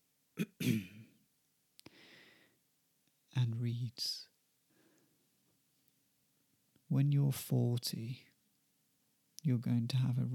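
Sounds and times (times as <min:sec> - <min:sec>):
man clearing his throat before reading a poem aloud: 0:00.4 - 0:01.1
speech: 0:04.0 - 0:04.2, 0:07.0 - 0:08.3, 0:09.4 - 0:10.3.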